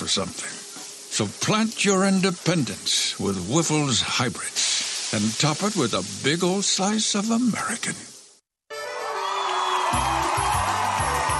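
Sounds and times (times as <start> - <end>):
speech: 0.1 - 0.6, 1.2 - 8.1
crowd roaring and cheering: 8.7 - 11.3
whoops: 9.0 - 11.3.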